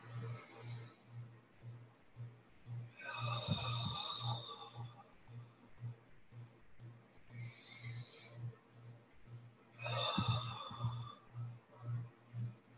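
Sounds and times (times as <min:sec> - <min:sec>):
low steady pulsing hum: 0:00.0 - 0:12.7
slow deep breaths in and out: 0:00.0 - 0:12.7.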